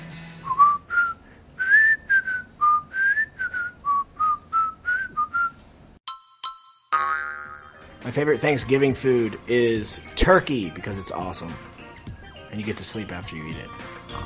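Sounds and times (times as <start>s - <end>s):
person whistling a bouncy TV theme-song melody: 0.4s - 5.6s
brief chiming tones: 6.1s - 7.0s
speech: 8.0s - 11.7s, 12.5s - 14.2s.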